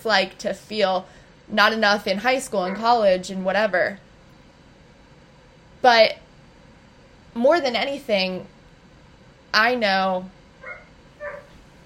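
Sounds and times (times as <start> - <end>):
speech: 0.0 - 4.0, 5.8 - 6.2, 7.4 - 8.5, 9.5 - 10.4
dog barking: 2.6 - 3.0, 10.6 - 11.6.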